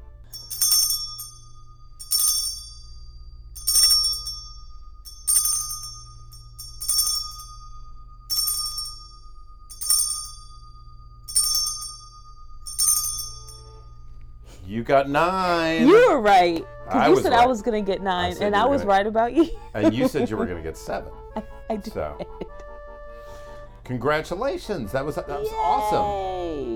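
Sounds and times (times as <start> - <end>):
bright ringing chime being struck: 0.0 - 20.5
low steady hum: 0.0 - 26.7
speech: 14.7 - 22.6, 23.9 - 26.7
laughter: 15.2 - 22.6.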